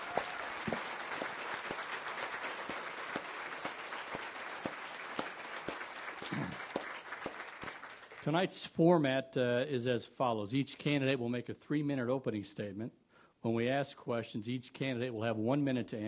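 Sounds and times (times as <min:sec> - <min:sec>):
audience applause: 0:00.0 - 0:08.3
speech: 0:08.2 - 0:16.0.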